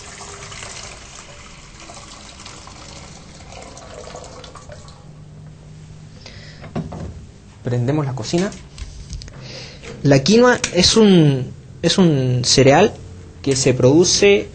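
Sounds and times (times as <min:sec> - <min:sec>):
boiling water pouring into a cooking pot: 0:00.0 - 0:05.1
speech: 0:07.6 - 0:08.7, 0:10.0 - 0:14.5.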